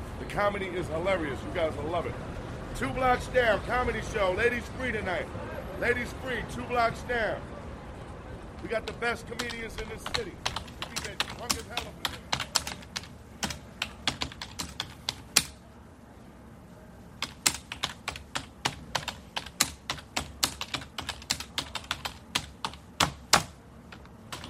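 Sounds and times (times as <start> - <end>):
speech: 0.4 - 7.5, 8.6 - 10.5
typewriter keys hammering: 8.8 - 15.6, 17.2 - 24.4.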